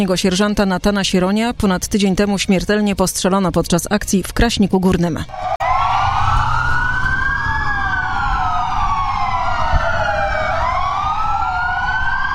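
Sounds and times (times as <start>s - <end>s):
speech: 0.0s - 5.5s
several police car sirens wailing in tribute: 5.3s - 12.3s.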